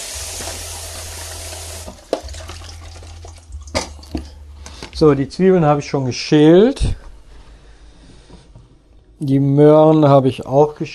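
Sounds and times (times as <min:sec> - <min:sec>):
tap water running over zucchini being washed: 0:00.0 - 0:04.3
speech: 0:05.0 - 0:07.0, 0:09.2 - 0:10.9.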